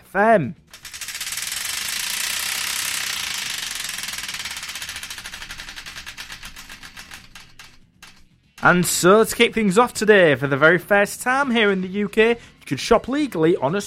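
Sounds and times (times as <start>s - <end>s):
speech: 0.1s - 0.8s, 8.6s - 13.8s
prize wheel pointer clicking as the wheel is spun: 0.7s - 10.0s.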